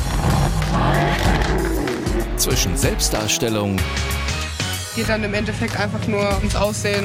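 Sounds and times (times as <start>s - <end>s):
tuned car engine roaring with throaty exhaust at a tuner meet: 0.1s - 4.3s
speech: 2.4s - 4.3s, 5.0s - 7.0s.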